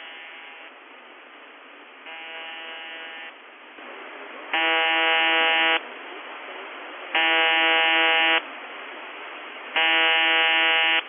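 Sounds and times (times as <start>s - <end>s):
shortwave radio station buzzer tone: 0.0s - 0.7s, 2.1s - 3.4s, 4.5s - 5.8s, 7.1s - 8.4s, 9.8s - 11.0s
shortwave radio static: 2.1s - 11.0s.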